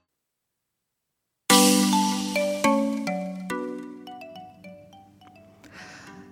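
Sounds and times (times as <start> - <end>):
mobile phone ringtone: 1.5 - 6.3.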